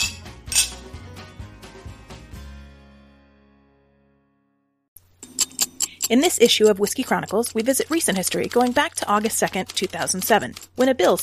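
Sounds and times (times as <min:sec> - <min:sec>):
glasses clinking in a toast: 0:00.0 - 0:00.8
speech: 0:06.1 - 0:11.2.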